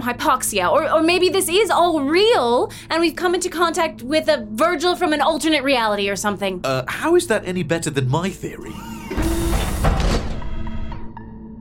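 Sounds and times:
speech: 0.0 - 9.0
low electronic tones: 8.0 - 11.5
locked sliding lab door mechanism whirring and hissing: 8.6 - 11.1.

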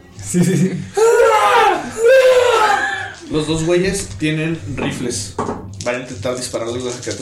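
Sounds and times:
speech: 0.3 - 1.1, 3.3 - 7.1
Wilhelm scream stock sound effect, strained high cry: 1.0 - 3.2.

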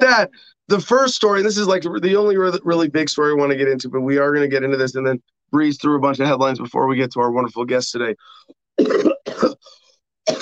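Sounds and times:
speech: 0.1 - 10.3
person coughing: 8.8 - 10.3
raspy throat-clearing exhale: 8.8 - 10.3.

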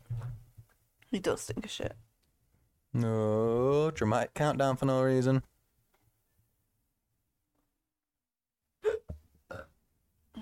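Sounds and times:
speech: 1.1 - 2.1, 2.9 - 5.5
hiccups: 8.8 - 9.8.

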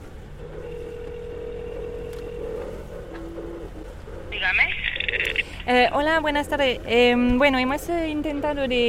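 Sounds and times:
faint hum: 0.0 - 8.8
steady low tone of a telephone call to a marina in Santa Cruz: 0.1 - 5.9
louder buzzing high-pitched telephone ring: 0.4 - 3.6
speech: 4.4 - 8.8.

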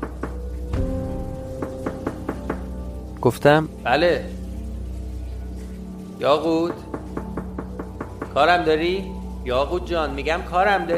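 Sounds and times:
sharp knocks on a door: 0.0 - 0.5, 1.6 - 2.7, 6.6 - 8.5
speech: 3.2 - 4.4, 6.2 - 6.9, 8.4 - 10.9.

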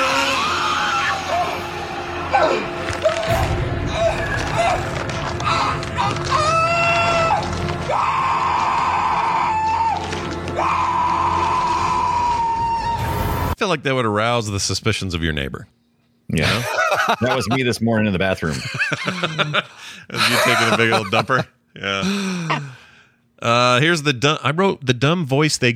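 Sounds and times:
man screaming in a movie clip: 0.0 - 2.8, 3.9 - 13.3
speech: 13.8 - 22.8, 23.4 - 25.7
laughter: 16.4 - 17.8, 18.4 - 22.8.

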